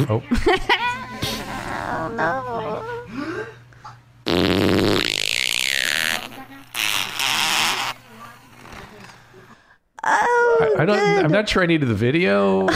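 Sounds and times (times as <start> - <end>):
speech: 0.0 - 1.0, 1.8 - 3.6, 10.8 - 12.7
fart noise: 4.2 - 8.0.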